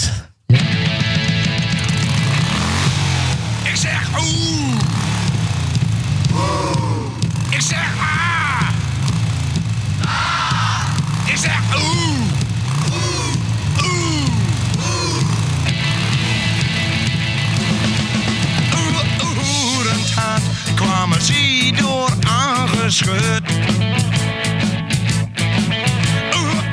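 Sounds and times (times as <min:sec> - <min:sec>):
Dutch-language rock record in Achterhoek dialect: 0:00.5 - 0:26.7
engine-like revs within the music: 0:00.5 - 0:26.7
sung vocals: 0:03.7 - 0:05.0, 0:06.3 - 0:08.9, 0:10.0 - 0:16.1, 0:18.6 - 0:23.8, 0:26.2 - 0:26.7.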